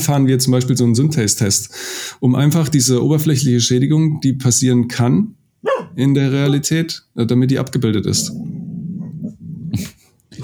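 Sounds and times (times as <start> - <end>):
speech: 0.0 - 8.6
dog whimpering whine: 5.6 - 6.0, 8.2 - 9.8
dog growling low: 5.6 - 6.1, 8.0 - 10.4.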